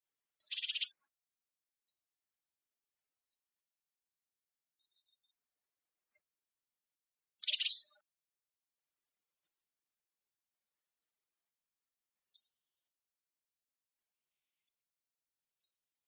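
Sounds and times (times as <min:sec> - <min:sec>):
very high bird chirps with buzzy rasp: 0:00.3 - 0:01.0, 0:01.9 - 0:03.6, 0:04.8 - 0:08.0, 0:08.9 - 0:11.3, 0:12.2 - 0:12.8, 0:14.0 - 0:14.5, 0:15.6 - 0:16.0.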